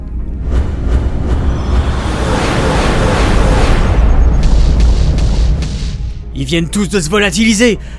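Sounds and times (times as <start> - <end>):
torpedo explosion with deep roaring boom: 0.4 - 6.3
speech: 6.4 - 7.9.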